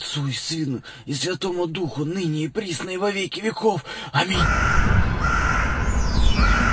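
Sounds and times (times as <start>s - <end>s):
steady noise: 0.0s - 6.7s
speech: 0.2s - 5.1s
raven cawing outside a window: 4.3s - 6.7s.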